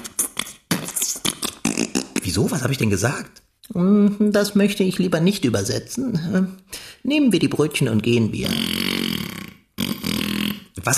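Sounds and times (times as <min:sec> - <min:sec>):
speech: 0:02.3 - 0:08.9
whoopee cushion raspy fart noise: 0:08.5 - 0:10.7.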